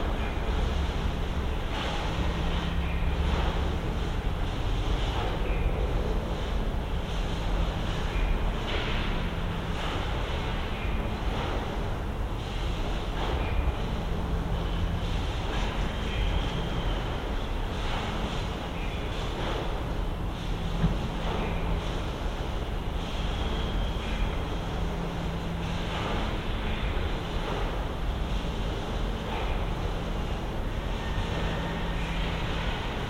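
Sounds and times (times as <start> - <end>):
industrial rumble in the evening air: 0.0 - 33.0.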